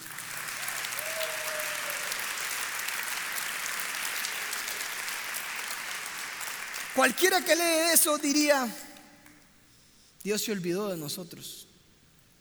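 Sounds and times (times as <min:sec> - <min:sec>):
large group applauding: 0:00.0 - 0:08.4
speech: 0:07.0 - 0:08.9, 0:10.2 - 0:11.7.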